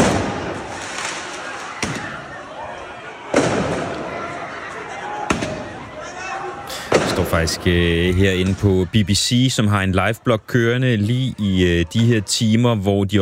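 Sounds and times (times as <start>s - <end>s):
fireworks set off in an open street during student protests in France: 0.0s - 2.1s, 3.3s - 4.0s, 6.8s - 8.8s
noisy outdoor din: 0.0s - 13.2s
speech: 7.3s - 13.2s.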